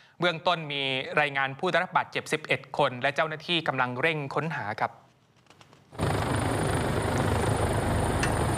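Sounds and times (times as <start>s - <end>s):
speech: 0.2s - 5.0s
helicopter landing with rotor wash: 6.0s - 8.5s.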